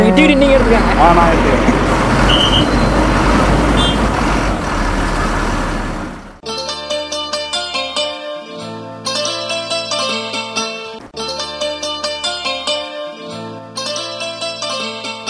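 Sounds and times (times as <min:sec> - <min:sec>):
bus engine rumbling at a roadside bus stop: 0:00.0 - 0:06.4
traffic noise: 0:00.0 - 0:06.4
speech: 0:00.3 - 0:03.0
music: 0:06.4 - 0:15.2.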